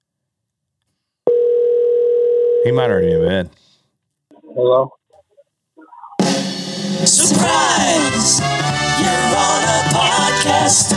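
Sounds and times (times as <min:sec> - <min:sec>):
telephone ringback tone on an outgoing call: 0:01.3 - 0:02.6
speech: 0:02.6 - 0:03.6, 0:04.6 - 0:05.0, 0:07.1 - 0:10.9.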